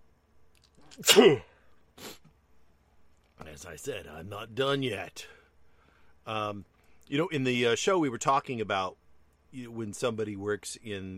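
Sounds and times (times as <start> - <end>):
speech: 0.8 - 1.5, 3.6 - 5.4, 6.3 - 11.1
person sneezing loudly: 0.8 - 2.3
short breathy sniff: 2.0 - 2.3.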